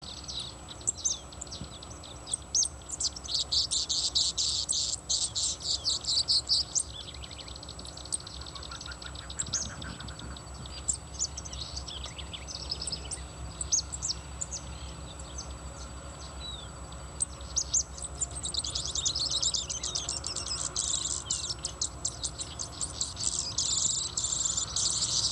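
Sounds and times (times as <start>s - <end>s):
Canto Tipio bird singing: 0.0s - 25.3s.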